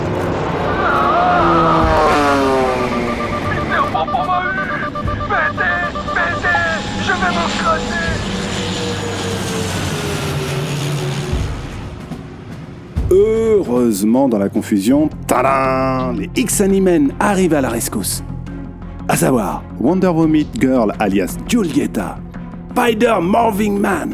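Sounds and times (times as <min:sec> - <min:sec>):
combat drone flying overhead: 0:00.0 - 0:13.2
speech: 0:13.9 - 0:18.4, 0:19.1 - 0:22.2, 0:22.8 - 0:24.1.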